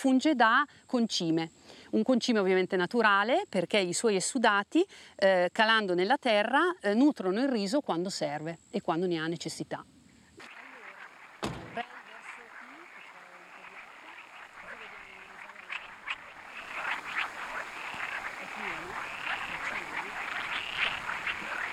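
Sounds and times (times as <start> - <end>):
speech: 0.0 - 9.9
chorus of many frogs croaking in a rice field: 10.4 - 21.7
sharp knock: 11.4 - 11.9.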